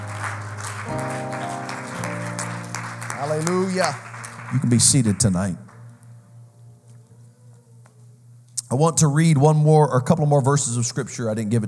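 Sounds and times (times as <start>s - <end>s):
audience clapping: 0.0s - 6.0s
sustained keyboard or organ chords: 0.0s - 6.9s
speech: 3.2s - 5.7s, 8.7s - 11.6s.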